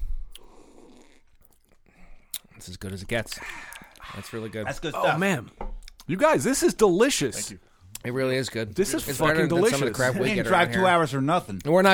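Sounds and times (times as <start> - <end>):
person sipping beer: 0.0 - 2.6, 3.4 - 4.6
speech: 2.6 - 11.9.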